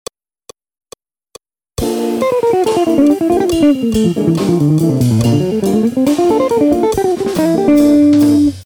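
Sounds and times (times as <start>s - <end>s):
fast guitar licks: 1.8s - 8.6s.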